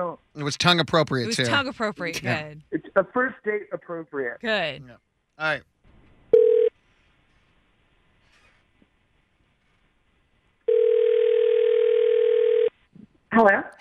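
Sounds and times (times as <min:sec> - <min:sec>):
speech: 0:00.0 - 0:05.7, 0:13.3 - 0:13.7
telephone ringback tone heard from the caller's end: 0:06.4 - 0:06.7, 0:10.7 - 0:12.7.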